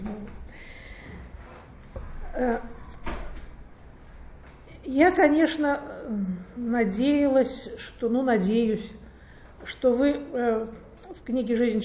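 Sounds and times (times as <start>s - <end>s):
speech: 2.4s - 2.8s, 4.9s - 9.0s, 9.6s - 11.8s
door closing with a soft thud: 2.8s - 3.6s.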